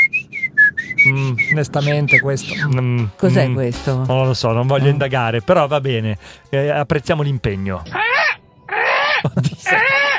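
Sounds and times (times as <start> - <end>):
short breathy crackly sound: 0.0 - 3.3, 6.1 - 6.6, 7.7 - 10.1
human voice imitating a tired seagull with nasal wailing cries: 1.0 - 3.6, 9.0 - 10.1
speech: 1.0 - 8.0
laughter: 1.1 - 8.0, 9.0 - 10.1.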